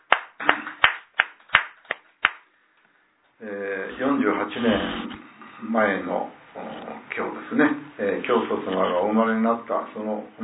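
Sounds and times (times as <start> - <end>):
hand clapping at a religious gathering celebrating a birthday: 0.0 - 2.5
speech: 3.4 - 10.4.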